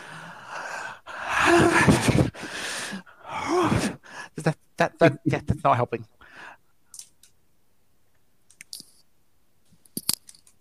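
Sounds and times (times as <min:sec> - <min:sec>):
person drawing a deep breath with strained gasps and sighs: 0:00.0 - 0:04.4
speech: 0:04.4 - 0:06.2.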